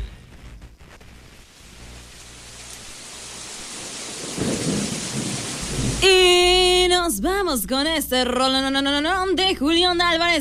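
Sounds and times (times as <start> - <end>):
steady rain pouring outside: 1.4 - 7.3
low rumbling thunder: 4.1 - 7.1
speech: 6.0 - 6.3, 7.1 - 10.3.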